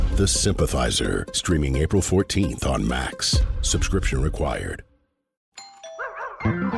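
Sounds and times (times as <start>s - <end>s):
speech: 0.2s - 4.9s
doorbell two-tone ding-dong chime: 5.6s - 6.6s
dog barking and howling loudly: 6.0s - 6.6s.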